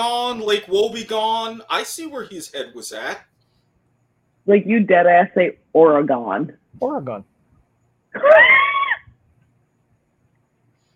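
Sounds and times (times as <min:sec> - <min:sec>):
speech: 0:00.0 - 0:03.3, 0:04.4 - 0:07.3, 0:08.1 - 0:08.7
woman screaming: 0:08.2 - 0:09.1.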